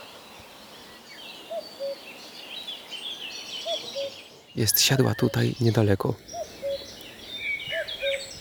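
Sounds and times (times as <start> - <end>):
songbirds chirping: 0.0 - 8.3
common cuckoo calling its two-note call: 1.5 - 2.1, 3.6 - 5.7, 6.3 - 8.3
speech: 3.8 - 6.4.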